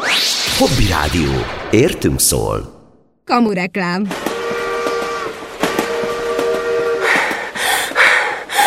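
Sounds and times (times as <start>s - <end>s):
speech: 0.6s - 4.3s
steam train whistle: 4.1s - 8.1s.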